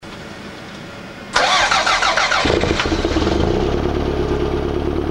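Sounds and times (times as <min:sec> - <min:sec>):
standard exhaust cold start: 0:01.3 - 0:05.0.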